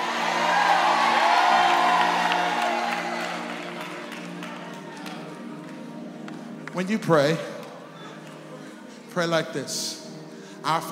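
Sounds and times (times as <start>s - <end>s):
whoops rising above the crowd: 0.0s - 3.7s
audience shouting and cheering: 0.0s - 5.2s
speech: 6.8s - 7.5s, 9.2s - 10.0s, 10.6s - 10.9s.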